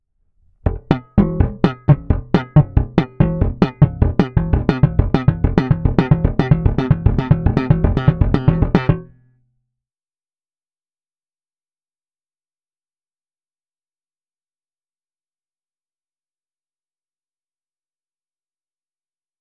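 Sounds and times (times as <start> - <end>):
slap bass triplets exercise: 0.6 - 9.2.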